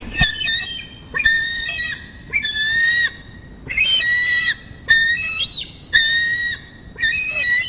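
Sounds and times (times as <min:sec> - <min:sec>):
eagle crying with loud whistled slightly buzzy notes: 0:00.0 - 0:07.6.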